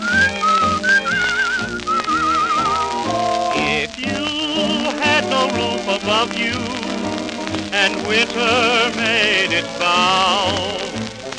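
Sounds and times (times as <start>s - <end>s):
cheerful human whistling a tuneful melody: 0.0s - 5.7s
full instrumental accompaniment: 0.0s - 11.3s
speech: 6.2s - 6.8s, 7.8s - 10.9s.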